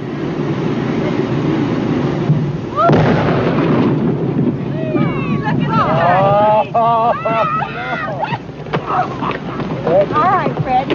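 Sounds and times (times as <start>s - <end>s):
dynamite explosion blowing up a beached whale: 0.0s - 6.6s
faint people's voices: 0.5s - 3.0s, 4.5s - 10.9s
laughter: 5.8s - 10.4s.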